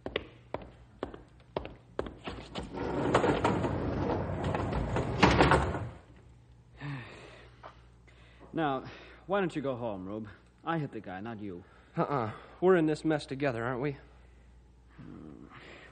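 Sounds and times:
heavy door rolling shut with a rumbling slide: 0:02.6 - 0:06.1
speech: 0:08.6 - 0:14.1.

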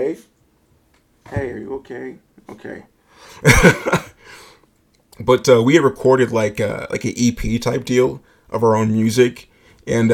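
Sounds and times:
speech: 0:00.0 - 0:00.3, 0:01.3 - 0:04.4, 0:05.2 - 0:10.1
loud harsh coughs: 0:03.4 - 0:04.2.

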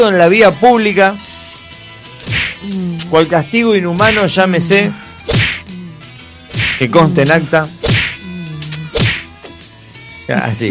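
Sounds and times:
speech: 0:00.0 - 0:01.3, 0:02.6 - 0:05.0, 0:06.8 - 0:07.8, 0:10.3 - 0:10.6
whip cracks: 0:02.2 - 0:02.6, 0:05.3 - 0:05.6, 0:06.5 - 0:06.9, 0:07.8 - 0:08.2, 0:08.9 - 0:09.3.

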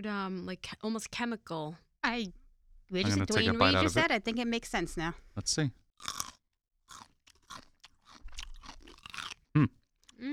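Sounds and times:
speech: 0:00.0 - 0:06.2, 0:09.6 - 0:10.3
someone biting and chewing crisp pickle chips: 0:06.0 - 0:09.5.

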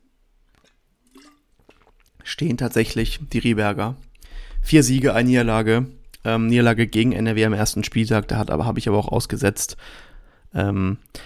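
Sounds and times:
person sipping water: 0:00.4 - 0:02.3, 0:04.1 - 0:04.6, 0:06.0 - 0:06.3
swallowing sounds: 0:00.5 - 0:02.3
speech: 0:02.4 - 0:11.2.

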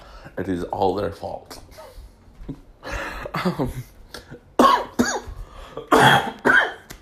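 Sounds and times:
speech: 0:00.3 - 0:01.8, 0:02.5 - 0:02.7, 0:03.3 - 0:03.9, 0:05.8 - 0:06.4
harsh raspy coughing fit: 0:03.3 - 0:06.9.

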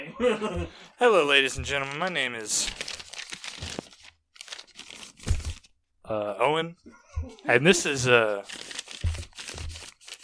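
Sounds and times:
laughter: 0:00.0 - 0:01.0
speech: 0:00.2 - 0:02.9, 0:06.1 - 0:08.6
paper of a written note rustled and crinkled by hand: 0:01.3 - 0:05.7, 0:08.4 - 0:10.2.

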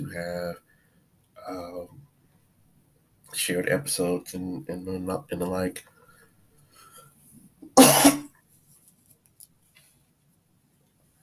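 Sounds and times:
speech: 0:00.1 - 0:00.7, 0:01.4 - 0:02.0, 0:03.3 - 0:05.9, 0:07.8 - 0:08.2
loud harsh cough with throaty rasp: 0:07.8 - 0:08.3.

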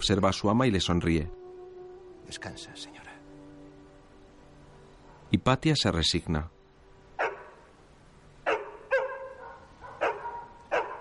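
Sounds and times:
speech: 0:00.0 - 0:01.4, 0:02.3 - 0:03.0, 0:05.3 - 0:06.5
dogs barking: 0:07.2 - 0:07.7, 0:08.4 - 0:10.9.

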